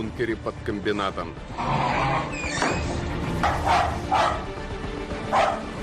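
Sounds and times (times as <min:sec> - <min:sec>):
speech: 0:00.0 - 0:04.4
spaniel barking: 0:03.4 - 0:04.5, 0:05.3 - 0:05.7.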